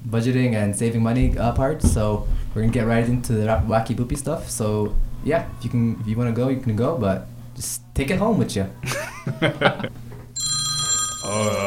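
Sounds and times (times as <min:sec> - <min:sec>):
speech: 0:00.1 - 0:10.0
laughter: 0:08.8 - 0:10.0
telephone bell ringing: 0:10.4 - 0:11.6.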